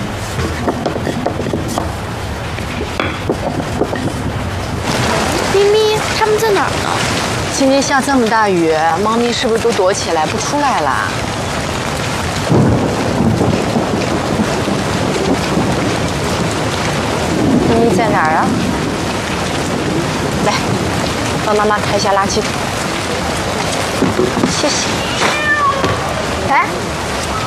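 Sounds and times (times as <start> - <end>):
heavy rain downpour: 0.0 - 27.4
low rumble of thunder: 0.0 - 27.4
woman talking: 4.9 - 11.2, 17.6 - 18.6, 20.4 - 22.6, 24.4 - 25.1, 26.4 - 26.9
child talking: 5.2 - 7.1
several cats meowing outdoors in heavy rain: 24.6 - 26.7.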